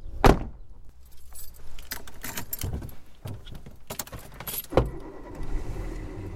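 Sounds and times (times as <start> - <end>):
thud: 0.2 - 0.6
keys jingling: 1.0 - 4.8
car engine turning over and rumbling as the car pulls away: 4.4 - 6.3.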